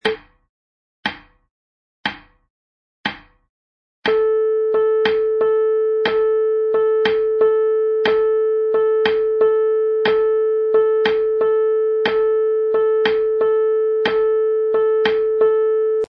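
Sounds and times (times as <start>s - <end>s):
quarter note triplet rhythm: 4.1s - 15.5s.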